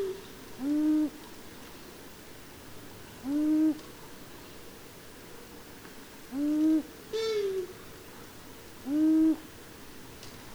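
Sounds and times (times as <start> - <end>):
long-eared owl low short hoots: 0.0 - 1.2, 3.2 - 3.8, 6.3 - 7.8, 8.8 - 9.5.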